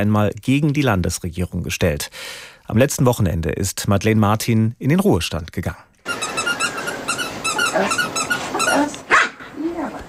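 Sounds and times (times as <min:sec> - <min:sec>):
speech: 0:00.0 - 0:05.9, 0:07.8 - 0:08.1
faint outdoor noise in a terraced-house garden in Wiesbaden-Bierstadt, Germany: 0:00.0 - 0:10.0
squeaky ball squealing over a lawn: 0:06.0 - 0:08.9
female dog whining: 0:06.0 - 0:10.0
female dog barking sharply: 0:07.5 - 0:09.6.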